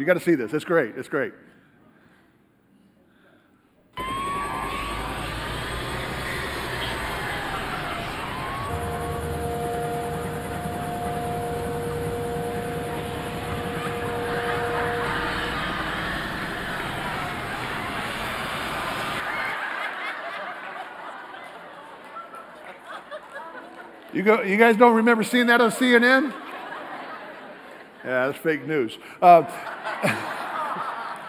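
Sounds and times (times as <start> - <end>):
speech: 0.0 - 1.6, 24.2 - 26.4, 28.0 - 30.3
murmuring voices: 4.0 - 19.2
roaring police car chase engines in a TV commercial: 4.0 - 19.2
steady tones: 4.0 - 19.2
police siren wailing: 4.0 - 19.5
laughter: 4.0 - 31.2.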